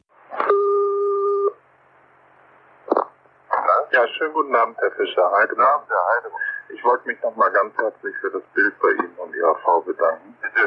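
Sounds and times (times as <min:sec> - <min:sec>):
clear steady electronic telephone tone: 0:00.3 - 0:01.6
speech: 0:04.0 - 0:10.6.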